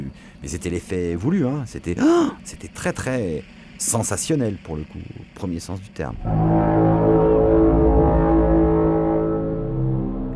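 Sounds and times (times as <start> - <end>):
speech: 0.4 - 7.2
deep droning bass horn blast of alien spaceships arriving: 6.1 - 10.3.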